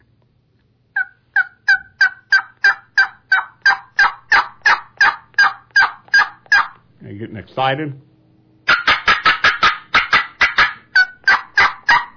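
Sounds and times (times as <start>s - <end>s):
hen turkey yelps played on a turkey call: 1.0s - 6.8s, 8.7s - 12.1s
speech: 7.2s - 8.1s.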